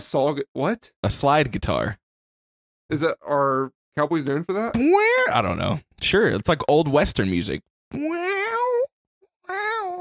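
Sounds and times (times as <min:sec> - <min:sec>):
speech: 0:00.0 - 0:02.0, 0:02.9 - 0:08.9
cat meowing: 0:08.0 - 0:08.9.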